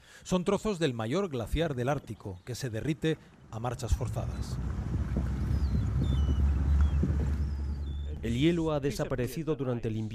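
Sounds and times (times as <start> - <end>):
speech: 0.2 - 4.8, 8.2 - 10.1
motorboat used for cod fishing among icebergs in Disko Bay in western Greenland: 3.5 - 8.4
wind noise: 3.8 - 8.4.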